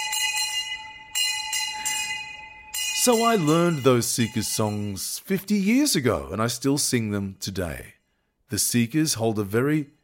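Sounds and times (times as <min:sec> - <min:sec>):
school bell ringing: 0:00.0 - 0:06.0
speech: 0:03.0 - 0:10.0.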